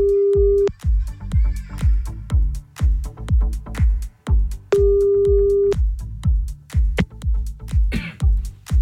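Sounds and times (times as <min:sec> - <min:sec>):
phone ringback tone while redialing: 0:00.0 - 0:00.7, 0:04.8 - 0:05.8
loud rhythmic music: 0:00.0 - 0:08.7.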